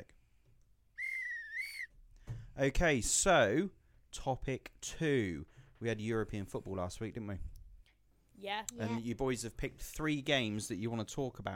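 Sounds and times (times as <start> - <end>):
referee's full-time whistle blast: 1.0 - 1.9
speech: 2.6 - 7.5, 8.4 - 11.5.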